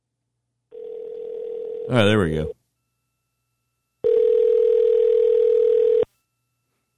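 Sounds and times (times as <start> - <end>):
telephone dial tone while placing a call: 0.7 - 1.9, 4.0 - 6.1
speech: 1.9 - 2.6.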